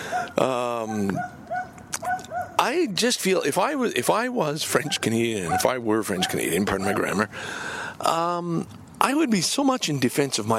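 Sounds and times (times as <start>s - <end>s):
speech: 0.3s - 1.4s, 2.6s - 10.5s
small dog yelping bark: 0.9s - 2.6s, 5.5s - 7.2s.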